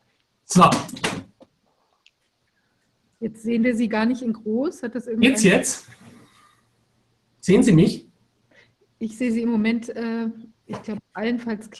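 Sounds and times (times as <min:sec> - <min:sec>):
speech: 0:00.5 - 0:01.0, 0:03.2 - 0:06.1, 0:07.4 - 0:08.1, 0:09.0 - 0:11.7
chair toppling over with a clattering crash: 0:00.6 - 0:01.4.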